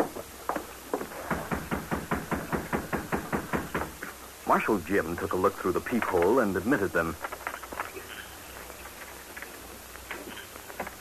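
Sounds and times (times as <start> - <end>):
knocking on the back door of a jail: 1.3 - 4.0
speech: 4.5 - 7.3.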